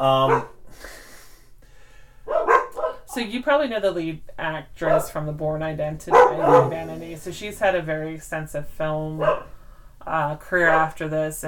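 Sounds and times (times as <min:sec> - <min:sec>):
speech: 0:00.0 - 0:00.9, 0:03.2 - 0:11.4
dogs barking at something outside: 0:00.3 - 0:00.6, 0:02.3 - 0:03.1, 0:04.9 - 0:05.2, 0:06.1 - 0:07.0, 0:09.2 - 0:09.6.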